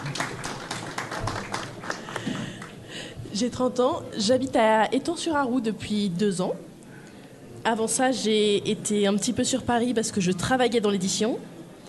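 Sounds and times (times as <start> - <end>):
audience applauding at a book fair round table in Blanzy, France: 0.0 - 2.8
speech: 3.4 - 6.7, 7.6 - 11.6.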